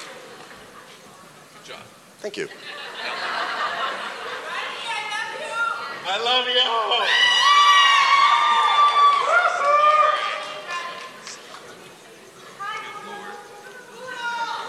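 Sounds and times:
speech: 0:01.7 - 0:03.3, 0:06.0 - 0:07.4
laughter: 0:02.4 - 0:05.1
audience cheering and yelling with many high voices: 0:04.2 - 0:11.3.

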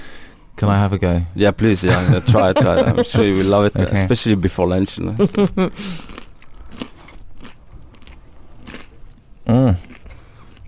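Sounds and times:
speech: 0:00.6 - 0:06.1
laughter: 0:01.8 - 0:04.2, 0:05.0 - 0:05.8
biting and chewing a crisp canapé with mozzarella, olive and basil: 0:05.2 - 0:10.6.

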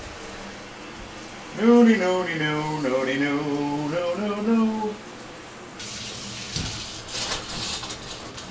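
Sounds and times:
speech: 0:01.6 - 0:05.1
shower water spraying: 0:05.8 - 0:08.3.

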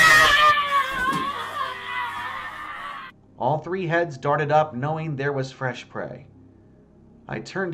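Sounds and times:
woman's loud high-pitched scream: 0:00.0 - 0:03.1
speech: 0:03.4 - 0:06.3, 0:07.3 - 0:07.7.

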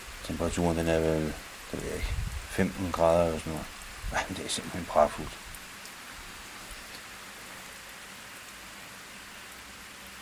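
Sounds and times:
steady rain pattering on surfaces in Munkebo: 0:00.0 - 0:10.2
speech: 0:00.3 - 0:05.4
low rumble of wind on a windy July day: 0:00.4 - 0:06.4.

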